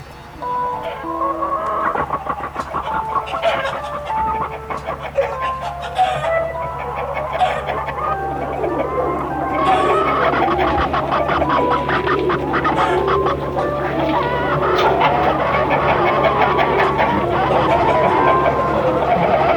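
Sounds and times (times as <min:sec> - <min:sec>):
flock of chickens clucking: 0:00.0 - 0:19.5
steady low hum: 0:00.0 - 0:19.5
laughter: 0:00.4 - 0:19.5.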